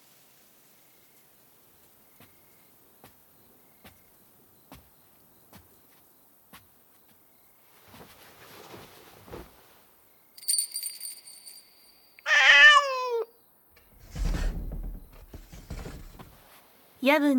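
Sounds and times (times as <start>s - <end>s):
rough scuffling noise: 4.7s - 10.0s, 13.8s - 16.8s
bright chiming tone: 10.4s - 12.3s
Bengal cat meowing: 12.2s - 13.3s
speech: 17.0s - 17.3s.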